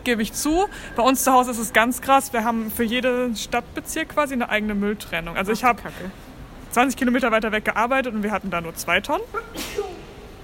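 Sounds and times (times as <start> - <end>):
speech: 0.0 - 9.8
person sneezing: 9.4 - 10.3.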